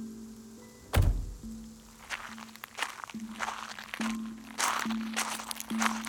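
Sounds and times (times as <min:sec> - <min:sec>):
car door shutting with a heavy thunk: 0:00.8 - 0:01.6
footsteps crunching at a walking pace: 0:01.3 - 0:06.0.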